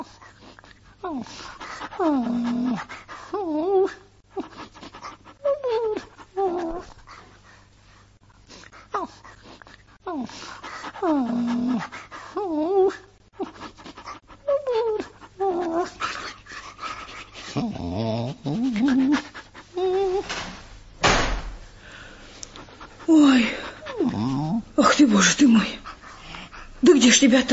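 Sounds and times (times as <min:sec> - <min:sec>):
injured dog whimpering and whining outside a door: 0:00.0 - 0:07.0, 0:08.8 - 0:20.3, 0:23.0 - 0:27.3
speech: 0:01.0 - 0:04.0, 0:27.2 - 0:27.5
sharp door sound: 0:20.2 - 0:21.7.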